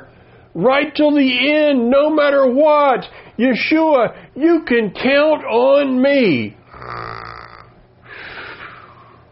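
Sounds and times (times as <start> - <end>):
speech: 0.6 - 7.0
person snoring with raspy buzzing breaths: 6.7 - 9.2.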